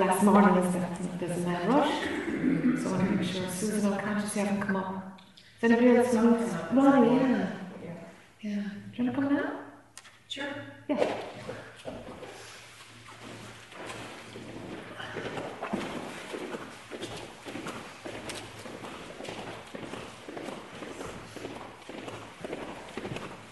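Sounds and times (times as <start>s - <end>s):
speech: 0.0s - 7.6s, 8.4s - 9.6s, 10.3s - 12.0s
heavy clomping footsteps on a hard floor: 13.0s - 23.4s.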